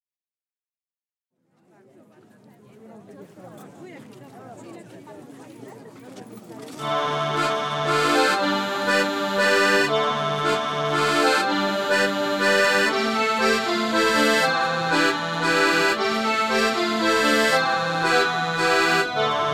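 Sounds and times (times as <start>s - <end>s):
accordion: 6.8s - 19.5s.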